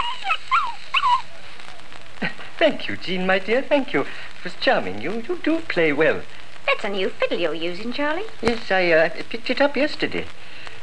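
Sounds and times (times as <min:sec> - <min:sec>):
puppies yipping and whimpering: 0:00.0 - 0:01.4
speech: 0:02.6 - 0:10.4.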